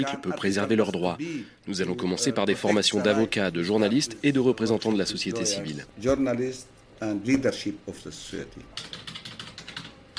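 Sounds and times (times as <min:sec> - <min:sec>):
speech: 0:00.0 - 0:09.2
young man typing on a computer keyboard at a desk: 0:08.8 - 0:10.1.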